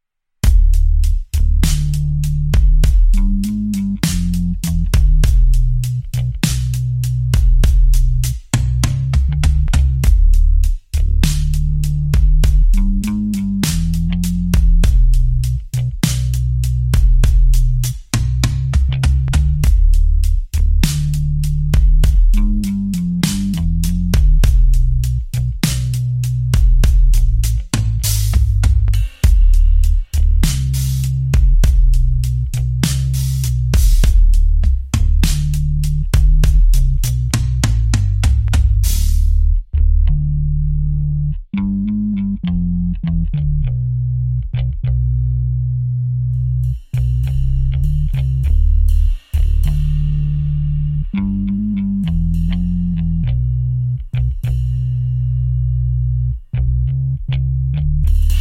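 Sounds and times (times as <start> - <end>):
bass: 0.0 - 58.3
drums: 0.4 - 39.5, 46.7 - 50.6, 58.1 - 58.3.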